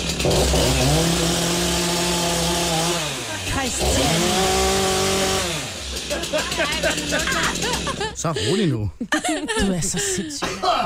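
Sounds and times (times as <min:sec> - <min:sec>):
small power saw running, cutting a plastic cup: 0:00.0 - 0:08.2
laughter: 0:05.8 - 0:10.8
speech: 0:06.6 - 0:10.8.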